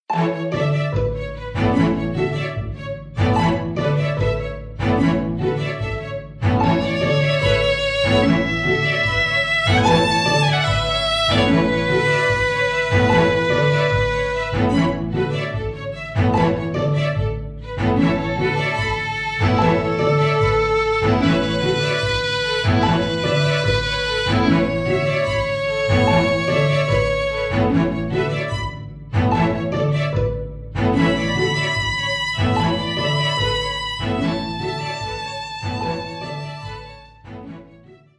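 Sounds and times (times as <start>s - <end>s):
procedural MIDI strings: 0.0s - 38.1s.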